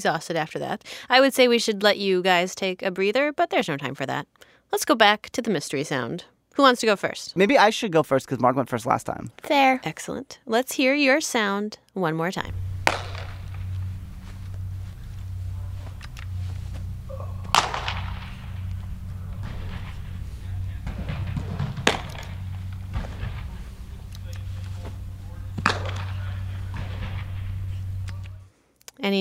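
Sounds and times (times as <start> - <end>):
speech: 0.0 - 13.1
steady low hum: 12.4 - 28.6
baseball smacking into a glove as pitchers play catch indoors: 12.6 - 15.2, 15.8 - 27.3.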